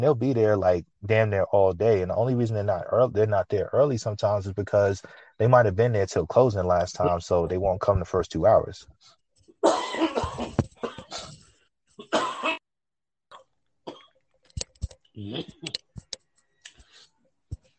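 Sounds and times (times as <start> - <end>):
speech: 0.0 - 9.8, 15.2 - 15.8
harsh coughing fit: 9.6 - 11.4, 12.0 - 12.6.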